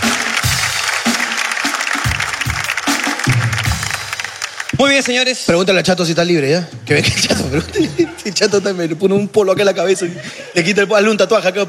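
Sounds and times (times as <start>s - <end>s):
crowd applauding: 0.0s - 5.8s
speech: 4.8s - 11.6s
laughter: 6.9s - 11.6s.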